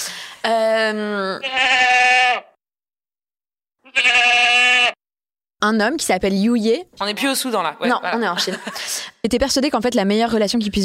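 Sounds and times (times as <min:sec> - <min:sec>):
speech: 0:00.4 - 0:01.8, 0:05.6 - 0:10.8
goat bleating: 0:01.4 - 0:02.6, 0:03.8 - 0:05.0
laughter: 0:07.9 - 0:09.1.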